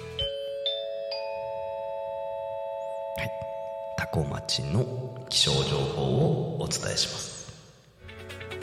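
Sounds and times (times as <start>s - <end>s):
rising three-note electronic announcement chime with bell-like tones: 0.0s - 5.6s
speech: 3.2s - 3.5s, 4.1s - 7.4s.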